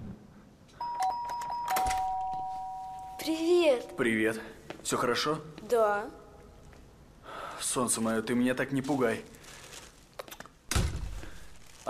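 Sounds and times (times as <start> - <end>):
apartment doorbell chiming: 0.8 - 3.4
speech: 3.2 - 6.2, 7.6 - 9.4.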